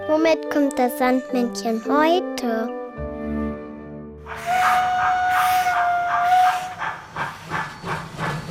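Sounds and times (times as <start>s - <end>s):
speech: 0.2s - 2.8s
steam locomotive whistle: 4.3s - 7.6s
hissing steam: 4.3s - 8.4s
steam locomotive chuffing as the engine starts moving: 4.3s - 8.4s.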